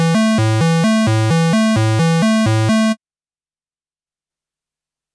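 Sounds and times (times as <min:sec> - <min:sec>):
voltage-controlled synth LFO modulation: 0:00.1 - 0:02.9.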